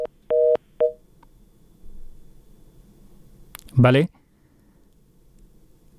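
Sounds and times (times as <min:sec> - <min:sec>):
short steady electronic telephone beeps as a radio phone-in call cuts off: 0:00.0 - 0:01.0
low hum: 0:00.0 - 0:05.9
speech: 0:03.8 - 0:04.2.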